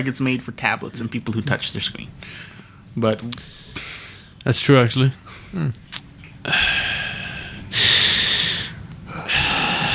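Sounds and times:
speech: 0.0s - 7.0s
heavy breathing into the microphone: 2.2s - 4.4s, 6.5s - 9.9s.

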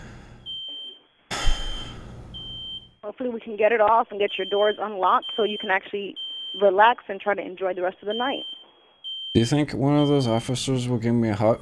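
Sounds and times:
smoke alarm going off: 0.4s - 2.9s, 4.2s - 6.8s, 8.1s - 10.7s
speech: 3.1s - 8.6s, 9.3s - 11.6s.

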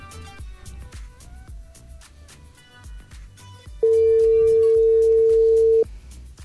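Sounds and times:
music: 0.0s - 6.4s
phone ringback tone beep: 3.8s - 5.9s.

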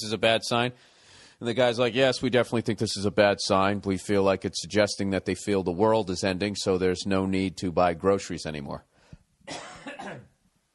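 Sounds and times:
speech: 0.0s - 8.9s, 9.5s - 10.3s
person coughing harshly: 9.5s - 10.4s.

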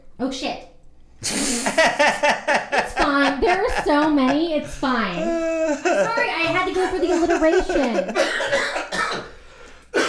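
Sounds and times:
speech: 0.2s - 9.0s
laughter: 1.2s - 9.0s
harsh coughs: 4.6s - 10.0s.

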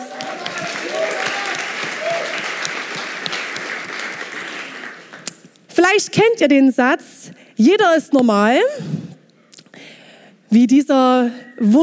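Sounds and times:
crowd applauding: 0.0s - 5.3s
speech: 5.8s - 9.0s, 10.5s - 11.8s.

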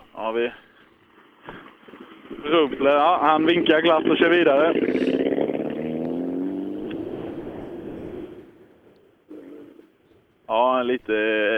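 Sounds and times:
speech: 0.2s - 0.7s, 2.4s - 5.2s, 10.8s - 11.5s
small Peugeot rally car engine roaring: 1.5s - 9.9s.

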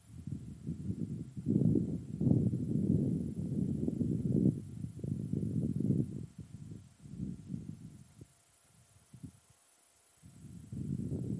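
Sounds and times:
low wind gusts rumbling on a high hilltop in Cypress Hills: 0.2s - 8.2s, 10.4s - 11.3s.

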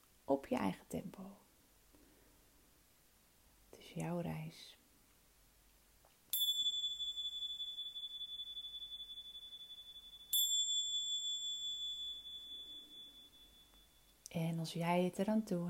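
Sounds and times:
speech: 0.3s - 1.4s, 3.8s - 4.8s, 14.3s - 15.6s
small bell struck and chiming: 6.3s - 14.3s.

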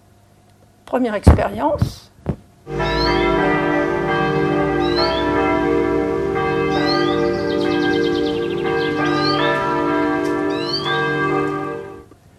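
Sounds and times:
speech: 0.9s - 2.1s
birds chirping: 2.7s - 11.9s
church bells ringing: 2.7s - 12.1s.

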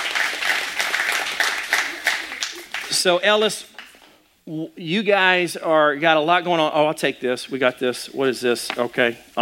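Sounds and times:
crowd clapping: 0.0s - 4.1s
speech: 2.9s - 3.8s, 4.5s - 9.3s.

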